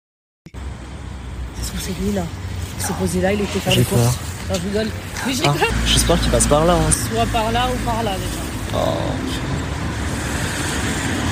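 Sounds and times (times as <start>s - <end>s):
white Peugeot 3008 car driving past on a road: 0.6s - 11.2s
speech: 1.7s - 9.6s.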